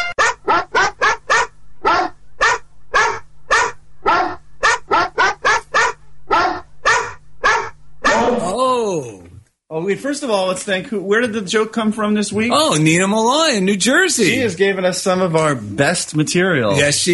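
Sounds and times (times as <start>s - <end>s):
dog yelping and howling: 0.2s - 8.5s
speech: 10.0s - 17.1s.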